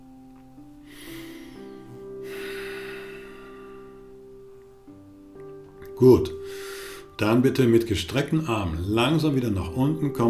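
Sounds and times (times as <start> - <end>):
soft steady droning music bed: 0.0 - 10.2
slow deep breathing: 0.8 - 4.3, 6.4 - 7.2
speech: 6.0 - 10.2.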